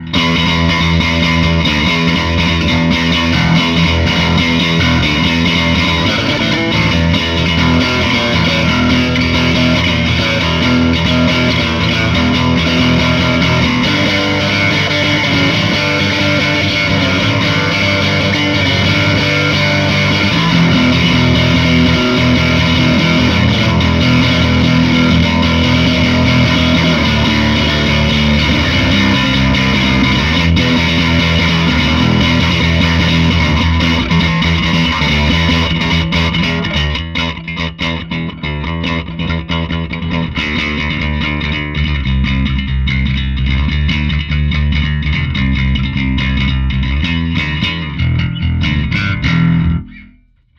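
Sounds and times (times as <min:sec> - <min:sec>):
bass test through bass amp: 0:00.0 - 0:50.5.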